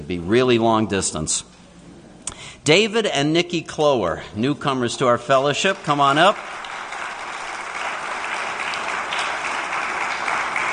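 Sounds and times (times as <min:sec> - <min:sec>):
speech: 0:00.1 - 0:01.6, 0:02.6 - 0:06.6
audience applauding: 0:05.6 - 0:10.7.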